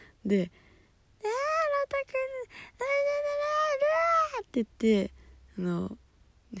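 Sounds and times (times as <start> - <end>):
speech: 0.2 - 1.4, 4.4 - 6.5
voice imitating a baby wailing: 1.2 - 4.5.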